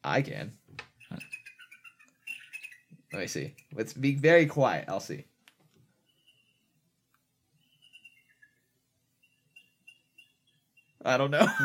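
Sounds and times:
speech: 0.0 - 1.4, 3.2 - 5.3, 11.1 - 11.6
recorded eagle calls played through a computer's small speaker: 1.0 - 3.7, 6.0 - 6.8, 7.6 - 11.0
laughter: 11.4 - 11.6.

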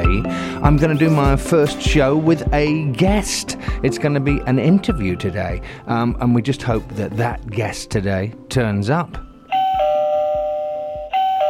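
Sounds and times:
speech: 0.6 - 9.3
electronic doorbell chime: 9.5 - 11.4.

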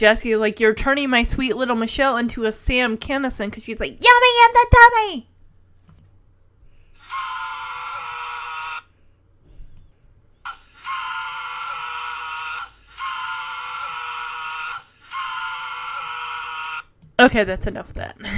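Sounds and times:
speech: 0.0 - 5.3, 17.2 - 18.3
man screaming theatrically for comic effect: 7.0 - 8.8, 10.5 - 16.8.

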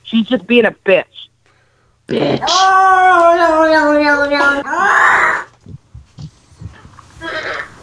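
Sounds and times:
speech: 0.1 - 1.2, 2.1 - 5.4
cat screaming: 2.2 - 5.5.

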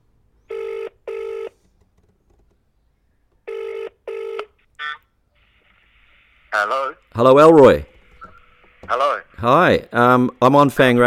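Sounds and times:
phone ringback tone through a handset held up to a mic: 0.5 - 1.6, 3.5 - 4.5
speech: 6.6 - 7.9, 8.9 - 11.0.

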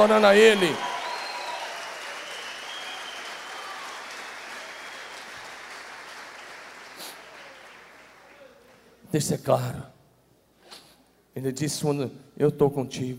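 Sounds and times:
speech: 0.0 - 0.9, 9.1 - 10.0, 11.4 - 13.1
cheer: 0.0 - 8.9
audience applauding: 0.0 - 9.0.

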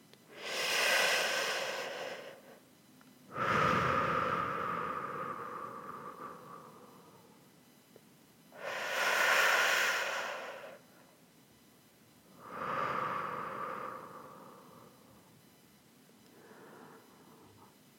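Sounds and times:
slow deep human breathing: 0.3 - 2.6, 3.3 - 7.8, 8.6 - 11.1, 12.3 - 15.6, 16.2 - 17.8.

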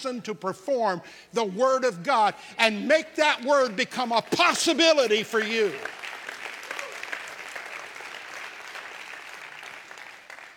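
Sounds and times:
speech: 0.0 - 6.0
crowd applauding: 4.2 - 10.5.

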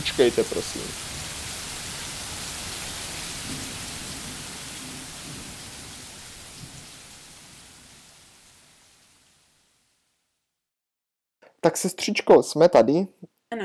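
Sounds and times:
speech: 0.0 - 1.1, 11.7 - 13.6
low thunder rumbling: 0.0 - 8.3
heavy rain pouring down: 0.0 - 10.0.

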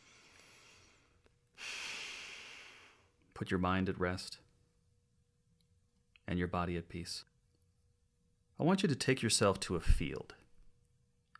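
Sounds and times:
deep breath taken during a relaxation and visualization exercise: 0.0 - 3.2
faint steady hiss: 0.0 - 11.3
speech: 3.4 - 4.4, 6.3 - 7.3, 8.6 - 10.4.

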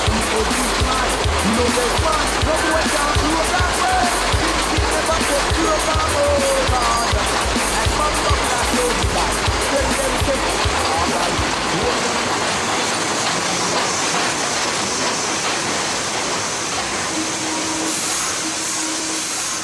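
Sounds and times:
faint rhythmic clatter of subway train wheels: 0.0 - 18.9
New York City subway train rumbling along the tracks: 0.0 - 19.6
brief tonal squeal: 17.0 - 19.6.

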